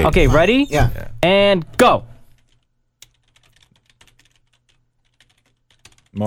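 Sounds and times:
speech: 0.0s - 2.1s
typing on a computer keyboard: 2.4s - 6.2s.

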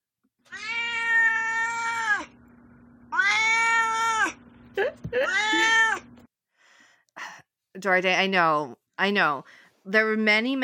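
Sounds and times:
domestic cat meowing with drawn-out calls: 0.5s - 2.3s, 3.1s - 4.4s, 5.2s - 6.1s
speech: 7.8s - 10.6s.

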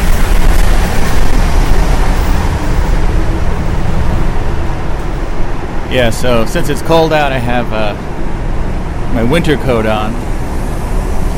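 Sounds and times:
bus engine rumble in a bus terminal: 0.0s - 11.3s
traffic noise at a bus terminal: 0.0s - 11.3s
speech: 5.9s - 8.3s, 9.1s - 10.3s.

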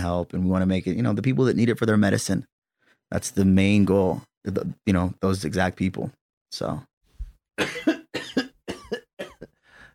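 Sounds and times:
speech: 0.0s - 6.9s, 7.6s - 8.0s
fit of harsh coughing: 7.6s - 9.6s.

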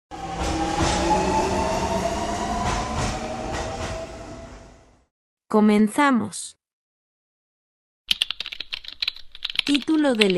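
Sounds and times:
urban rail train arriving at a station in Puerto Rico: 0.1s - 5.1s
speech: 5.5s - 6.6s, 9.7s - 10.3s.

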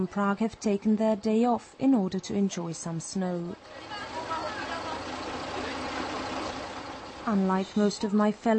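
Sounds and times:
speech: 0.0s - 4.1s, 7.2s - 8.5s
indistinct voices murmuring faintly: 0.8s - 8.5s
old Karosa bus engine idling: 3.3s - 8.5s.

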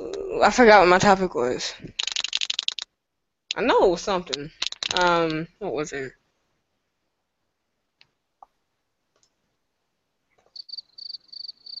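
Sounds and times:
speech: 0.4s - 1.9s, 3.6s - 6.2s
soft clicks: 1.9s - 2.9s, 4.3s - 5.4s
crickets chirping sound effect: 2.0s - 2.8s, 10.5s - 11.7s.

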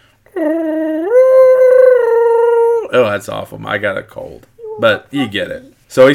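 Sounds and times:
speech: 0.3s - 0.6s, 2.9s - 6.1s
voice imitating a small film creature's little singing: 0.3s - 3.0s, 4.6s - 5.7s.

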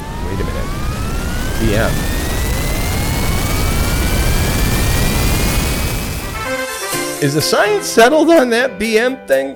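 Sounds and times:
jet engine spooling up: 0.0s - 7.0s
jet engine whine climbing in pitch: 0.0s - 7.2s
speech: 1.6s - 2.2s, 7.2s - 9.5s.

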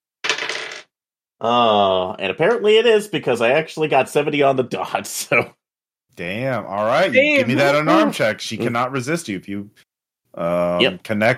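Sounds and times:
dice rolling on a table: 0.2s - 0.9s
speech: 1.4s - 5.6s, 6.2s - 11.3s.

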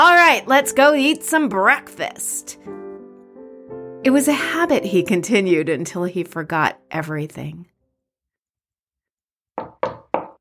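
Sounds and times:
speech: 0.0s - 2.8s, 4.0s - 7.7s
knocking on a wooden door frame: 9.6s - 10.3s.

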